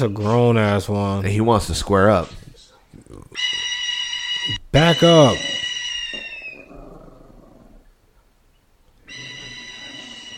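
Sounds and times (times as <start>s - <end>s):
speech: 0.0s - 2.4s, 4.5s - 5.6s
dog growling: 5.4s - 7.9s, 9.1s - 10.3s.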